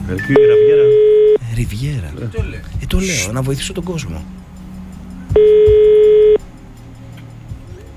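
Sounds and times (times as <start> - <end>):
speech: 0.1 - 0.8, 1.6 - 4.4
telephone ringback tone from a phone line: 0.3 - 1.4, 5.4 - 6.4.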